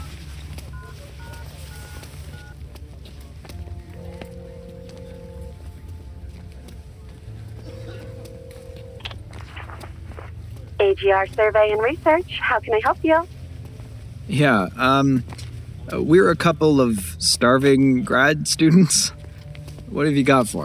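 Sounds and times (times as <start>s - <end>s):
steady low drone: 0.0s - 20.6s
long low telephone tones: 0.7s - 2.6s, 3.5s - 13.3s
telephone number dialing beeps: 0.7s - 2.6s
speech: 10.9s - 13.4s, 14.3s - 19.2s, 19.9s - 20.6s.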